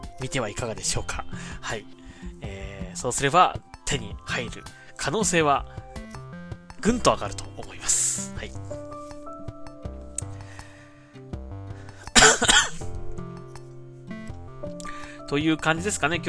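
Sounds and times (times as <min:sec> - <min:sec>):
music with sustained tones: 0:00.0 - 0:16.2
speech: 0:00.2 - 0:05.8, 0:06.8 - 0:08.8, 0:15.3 - 0:16.2
person coughing: 0:12.1 - 0:12.9.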